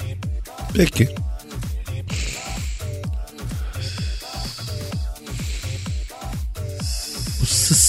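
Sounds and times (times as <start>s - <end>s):
speech: 0.7s - 1.3s
person breathing in through a blocked nose with a hissing whistle: 2.1s - 7.8s.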